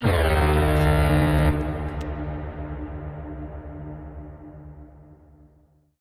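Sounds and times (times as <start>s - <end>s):
air horn: 0.0s - 3.0s.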